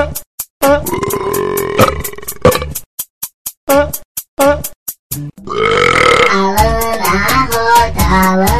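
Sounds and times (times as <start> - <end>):
punk track with sharp rapid percussive beats: 0.0 - 8.5
long loud deep burps: 0.9 - 2.8, 5.5 - 6.4.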